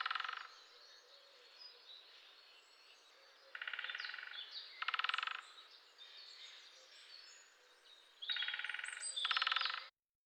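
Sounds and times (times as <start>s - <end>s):
great spotted woodpecker drumming: 0.0s - 0.5s, 3.5s - 5.4s, 8.4s - 9.9s
background birdsong: 0.0s - 9.9s.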